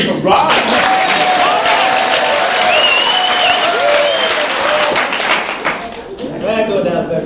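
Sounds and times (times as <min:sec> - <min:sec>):
voices rising above applause: 0:00.3 - 0:06.3
crowd clapping very fast: 0:00.3 - 0:06.6
whistles from crowd: 0:01.4 - 0:05.3.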